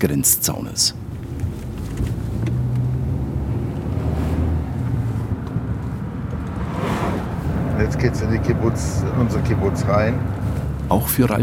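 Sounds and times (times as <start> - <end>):
speech: 0.0 - 1.1, 7.8 - 11.4
car engine humming at low speed: 1.0 - 11.4
wind buffeting the microphone: 4.7 - 10.8.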